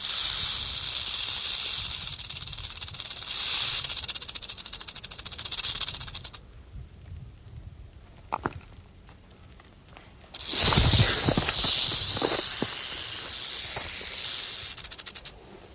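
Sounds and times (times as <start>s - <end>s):
rattlesnake rattling: 0.0s - 6.4s, 10.3s - 15.4s.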